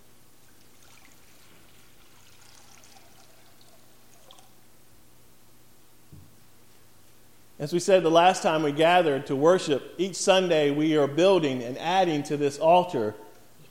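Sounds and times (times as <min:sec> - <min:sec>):
faint low hum: 0:00.0 - 0:13.6
water pouring: 0:00.4 - 0:04.6
small thud: 0:06.1 - 0:06.4
speech: 0:07.6 - 0:13.2.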